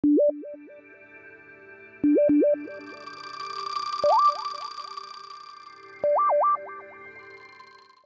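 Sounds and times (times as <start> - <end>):
alarms: 2.7 - 8.0.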